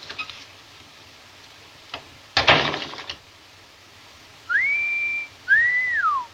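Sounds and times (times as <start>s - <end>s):
person whistling: 4.5s - 6.3s.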